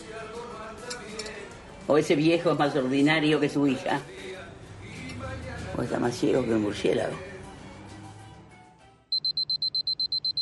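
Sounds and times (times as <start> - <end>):
speech: 1.9 - 4.2, 5.8 - 7.3
alarm clock beeping with high-pitched beeps: 9.1 - 10.4.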